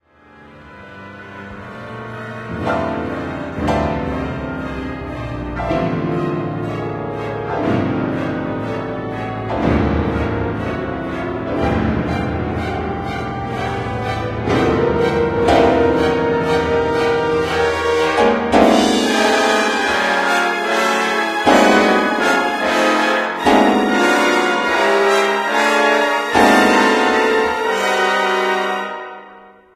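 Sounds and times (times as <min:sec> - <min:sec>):
piano concerto: 0:00.0 - 0:29.7.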